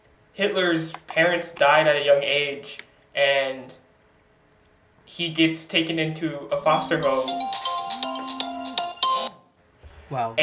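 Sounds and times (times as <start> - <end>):
speech: 0.4 - 3.8, 5.1 - 8.1, 10.1 - 10.4
phone electronic ringtone with rapid beeping tones: 6.6 - 9.5.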